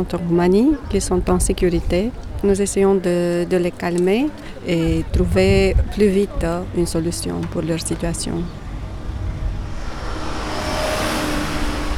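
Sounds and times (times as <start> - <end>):
speech: 0.0 - 8.6
road noise from cars driving past: 7.5 - 11.9.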